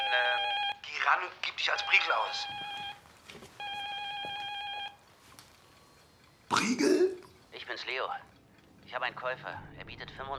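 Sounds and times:
telephone ringing with electronic tone: 0:00.0 - 0:05.2
speech: 0:01.0 - 0:03.5, 0:06.5 - 0:08.3, 0:08.9 - 0:10.3.

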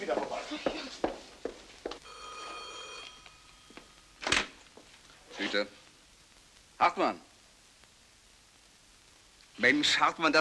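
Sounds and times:
telephone ringing on an outgoing call: 0:02.0 - 0:04.3
speech: 0:05.5 - 0:05.8, 0:06.8 - 0:07.3, 0:09.6 - 0:10.4.

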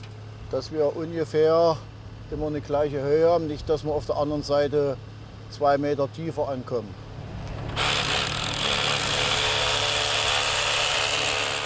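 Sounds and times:
speech: 0:00.5 - 0:07.0
power drill boring holes for dowels into a wall: 0:07.7 - 0:11.6.

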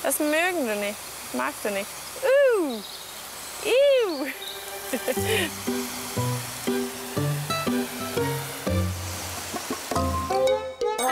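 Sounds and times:
speech: 0:00.0 - 0:03.0, 0:03.6 - 0:06.3
water spraying while watering an enclosure: 0:00.0 - 0:10.4
simple tonal melody: 0:04.7 - 0:11.1.

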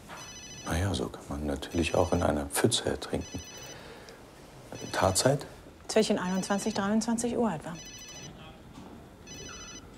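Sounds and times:
mobile phone ringing with electronic tones: 0:00.1 - 0:01.0, 0:01.6 - 0:04.0, 0:04.8 - 0:05.5, 0:06.2 - 0:07.1, 0:07.8 - 0:08.4, 0:09.2 - 0:09.9
speech: 0:00.9 - 0:03.7, 0:04.8 - 0:08.0.

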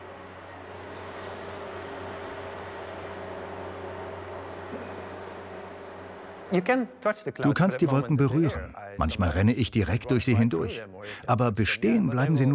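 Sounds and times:
fan extracting hazy air from room: 0:00.0 - 0:07.1
speech: 0:06.5 - 0:12.5.

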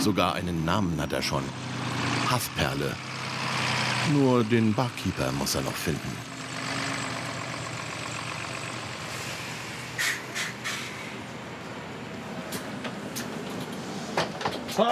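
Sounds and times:
speech: 0:00.0 - 0:03.1, 0:04.0 - 0:06.3, 0:14.8 - 0:14.9
bus engine running while being driven: 0:00.0 - 0:14.9.

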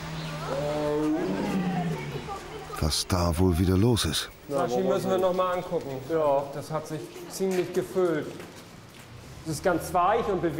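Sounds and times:
tiger roaring with a low throaty moaning call: 0:00.4 - 0:02.4
speech: 0:02.8 - 0:08.5, 0:09.5 - 0:10.5.

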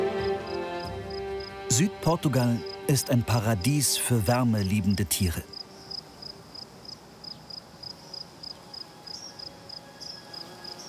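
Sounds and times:
crickets and grasshoppers chirping in southern Portugal: 0:00.0 - 0:10.8
speech: 0:01.7 - 0:05.6.

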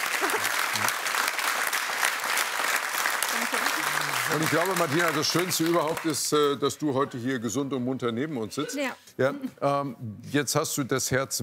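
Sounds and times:
audience applause: 0:00.0 - 0:06.6
speech: 0:04.3 - 0:11.4.

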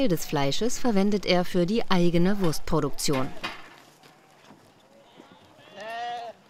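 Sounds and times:
speech: 0:00.0 - 0:03.6
faint low noise: 0:00.0 - 0:06.4
sheep bleating from a group of a lamb and ewes: 0:05.1 - 0:06.4.

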